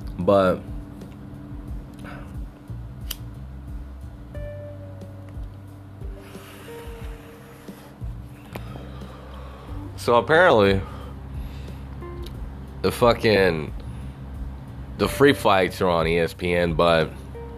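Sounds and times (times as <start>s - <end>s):
low hum: 0.0s - 17.5s
speech: 0.2s - 0.7s, 10.0s - 10.9s, 12.8s - 13.8s, 15.0s - 17.2s
lighter being flicked: 3.0s - 3.3s.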